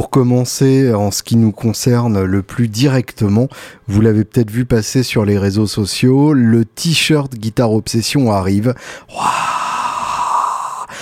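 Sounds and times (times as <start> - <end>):
speech: 0.0 - 9.6
intake of breath: 3.5 - 3.9, 8.8 - 11.0
voice making breathy roar imitating a crowd rushing into an arena: 9.1 - 11.0.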